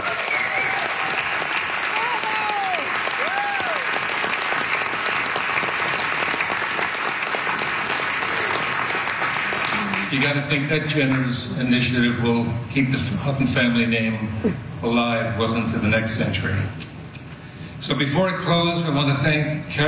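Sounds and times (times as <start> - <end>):
faint cheers: 0.0 - 4.0
large audience clapping: 0.0 - 11.4
speech: 10.2 - 16.9, 17.9 - 19.8.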